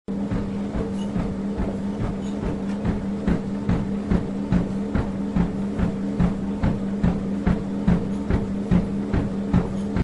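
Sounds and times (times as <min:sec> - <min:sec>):
treadmill: 0:00.1 - 0:10.0.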